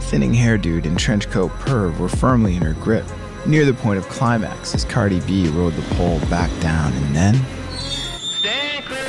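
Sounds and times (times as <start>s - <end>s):
speech: 0.1s - 7.6s
subway train wheels squealing in high metallic tones: 7.6s - 9.0s.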